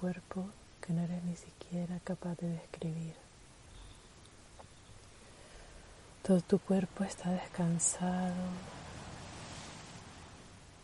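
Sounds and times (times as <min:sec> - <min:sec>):
speech: 0:00.0 - 0:03.3, 0:06.2 - 0:08.8
soft surf waves rolling slowly onto a shore: 0:07.1 - 0:10.8.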